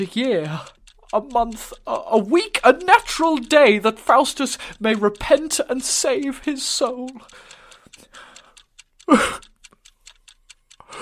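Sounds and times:
speech: 0:00.0 - 0:08.3, 0:09.1 - 0:09.4
clock ticking: 0:00.0 - 0:11.0
loud breathy gasp or sigh: 0:07.3 - 0:09.4.

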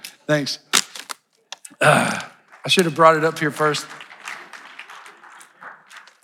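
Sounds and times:
speech: 0:00.3 - 0:00.7, 0:01.8 - 0:04.0
crowd clapping during a church sermon: 0:01.8 - 0:06.2.

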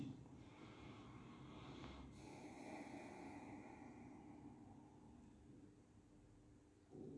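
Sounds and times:
slow airy breathing: 0:00.0 - 0:05.6.

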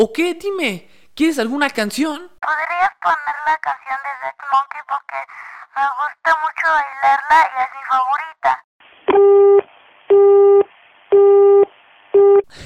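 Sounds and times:
speech: 0:00.0 - 0:10.7
telephone busy tone through the phone line: 0:11.2 - 0:12.4.

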